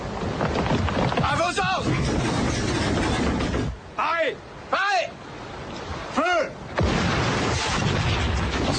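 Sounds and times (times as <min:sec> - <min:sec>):
wind: 0:00.0 - 0:08.7
sea: 0:01.2 - 0:08.7
heavy naval cannon shots: 0:06.8 - 0:08.7.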